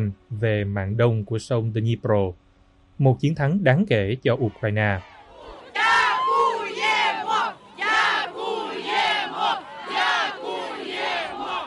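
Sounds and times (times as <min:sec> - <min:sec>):
speech: 0:00.0 - 0:02.4, 0:03.0 - 0:05.1
crowd of residents cheering and chanting thanks: 0:04.2 - 0:11.6.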